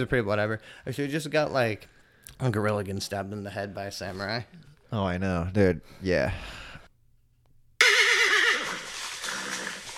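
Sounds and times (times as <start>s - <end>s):
speech: 0.0s - 6.6s
horse whinnying: 7.8s - 9.9s.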